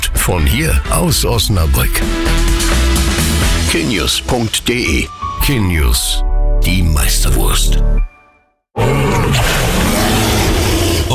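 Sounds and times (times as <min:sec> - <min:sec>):
speech: 0:00.2 - 0:02.9, 0:03.7 - 0:08.1
deep dinosaur roar: 0:08.8 - 0:11.1.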